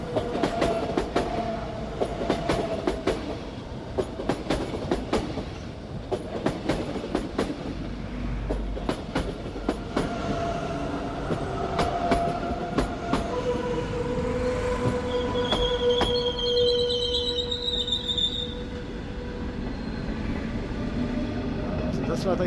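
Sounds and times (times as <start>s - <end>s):
InterRegio train wheels clattering over the rails: 0.0s - 10.5s, 11.2s - 13.4s, 14.8s - 16.4s
InterRegio passenger train passing: 0.0s - 22.4s
InterRegio train tonal squeals and hums: 9.5s - 22.0s.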